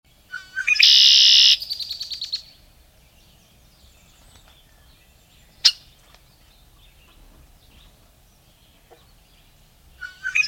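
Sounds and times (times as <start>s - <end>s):
red-winged blackbird calling: 0.2s - 2.6s, 3.2s - 10.4s.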